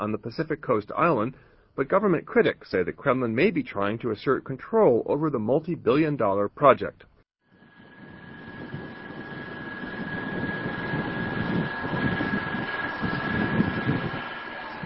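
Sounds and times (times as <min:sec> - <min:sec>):
speech: 0:00.0 - 0:07.1
large boat engine droning as the vessel moves across open water: 0:07.5 - 0:14.8
thin high whine: 0:07.5 - 0:14.8.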